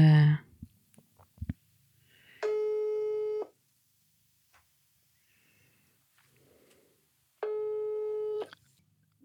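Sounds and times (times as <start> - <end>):
electronic ringback tones heard through a phone: 2.4 - 3.5, 7.4 - 8.5.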